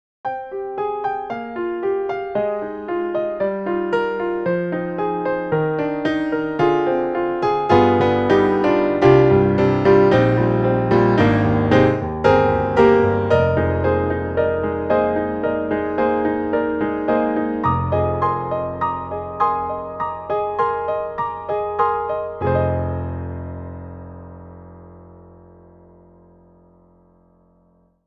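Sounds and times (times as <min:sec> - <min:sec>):
Yamaha grand piano sample: 0:00.2 - 0:28.0.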